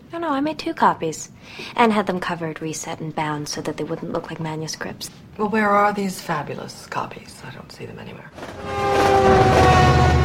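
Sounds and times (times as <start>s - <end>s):
speech: 0.1s - 9.6s
passenger train rumbling and rattling on rails: 8.4s - 10.2s
sustained horn-like tone: 8.4s - 10.2s.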